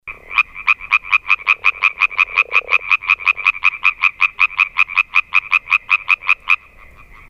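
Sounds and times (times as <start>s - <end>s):
European tree frog calling with harsh clacking croaks: 0.0s - 7.2s.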